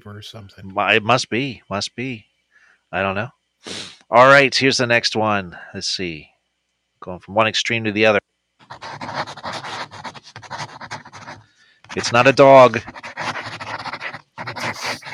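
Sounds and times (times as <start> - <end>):
speech: 0.0 - 2.3, 2.9 - 6.3, 7.0 - 8.2, 12.0 - 13.0
pencil scribbling on paper: 8.6 - 15.1.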